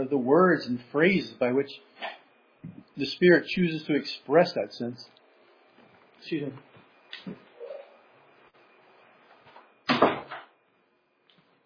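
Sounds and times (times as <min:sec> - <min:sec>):
speech: 0:00.0 - 0:05.2, 0:06.2 - 0:07.5
door pushed shut with a thud and rattle: 0:09.8 - 0:10.5.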